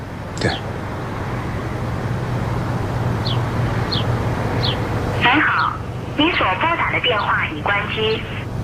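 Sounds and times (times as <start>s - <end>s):
steady hum: 0.0s - 8.6s
thin phone-filtered voice speaking: 0.4s - 0.6s, 5.2s - 8.4s
speech: 0.4s - 0.8s, 7.0s - 8.4s.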